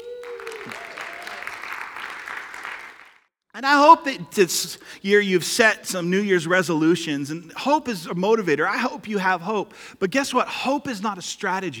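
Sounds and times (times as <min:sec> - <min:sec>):
audience applauding: 0:00.0 - 0:03.3
speech: 0:03.6 - 0:11.7.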